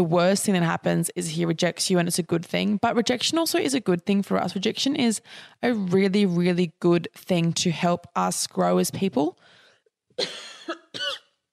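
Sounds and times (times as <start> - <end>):
speech: 0.0 - 9.6, 10.2 - 11.2
person coughing: 10.2 - 11.4.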